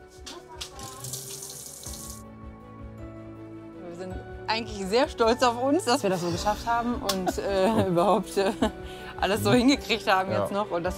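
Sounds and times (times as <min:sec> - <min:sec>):
water gushing from a camping-supply faucet in a converted city bus kitchen: 0:00.6 - 0:02.2
speech: 0:04.0 - 0:10.9.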